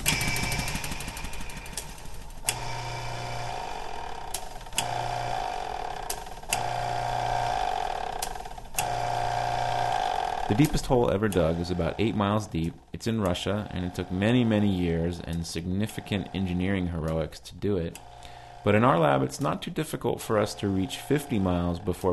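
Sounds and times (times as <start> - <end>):
hydraulic oil pumps moving large steel pistons in a lab: 0.1 - 22.1
speech: 10.5 - 22.1.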